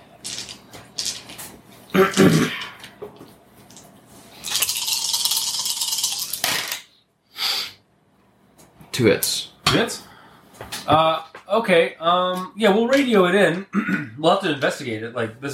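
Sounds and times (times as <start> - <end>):
dice thrown onto the ground during a game: 0.2 - 1.5, 3.7 - 6.9
speech: 2.0 - 2.6, 9.0 - 10.0, 10.9 - 15.5.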